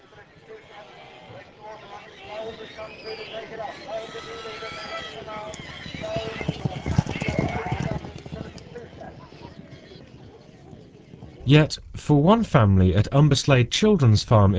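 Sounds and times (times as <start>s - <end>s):
shire horse hooves clip-clopping on a hard surface: 0.0s - 11.5s
indistinct voices murmuring: 0.0s - 14.5s
speech: 11.5s - 14.5s.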